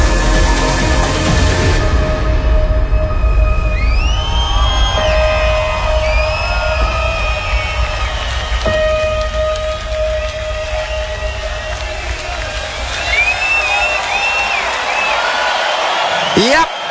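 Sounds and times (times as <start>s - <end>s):
huge music festival crowd cheering at main stage: 0.0s - 16.8s
shrill whistles from festival crowd: 2.8s - 9.3s, 10.2s - 16.8s
rising whoops from festival crowd: 3.4s - 16.8s.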